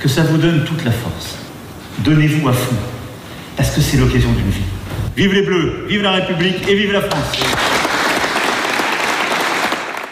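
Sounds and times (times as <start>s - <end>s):
speech: 0.0s - 3.0s, 3.6s - 7.8s
large crowd applauding after a speech: 7.3s - 10.1s.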